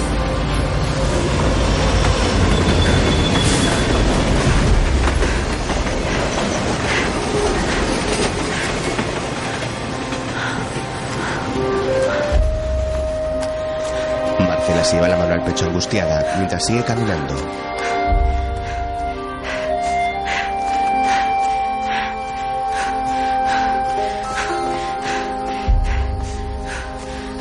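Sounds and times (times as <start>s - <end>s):
train passing on a nearby track: 0.0s - 27.4s
train wheels clickety-clacking over the rails: 1.2s - 12.4s
speech: 14.9s - 17.7s.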